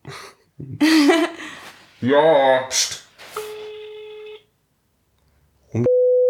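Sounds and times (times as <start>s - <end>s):
laughter: 0.1s - 1.8s
speech: 2.0s - 2.8s
phone call ringing on speakerphone: 3.3s - 4.4s.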